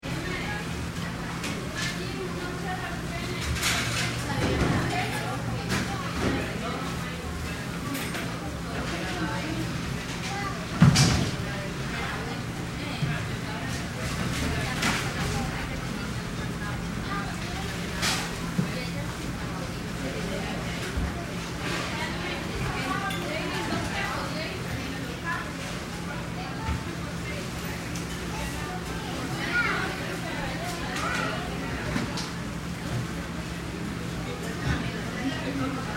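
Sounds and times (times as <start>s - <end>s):
active fast food restaurant crowd in Costa Rica: 0.0s - 35.9s.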